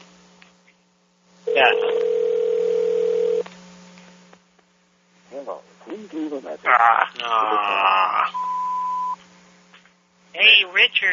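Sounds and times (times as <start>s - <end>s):
steady electronic telephone ringing tone, unanswered: 1.5s - 3.4s
speech: 1.6s - 2.2s, 6.0s - 8.5s, 10.3s - 11.1s.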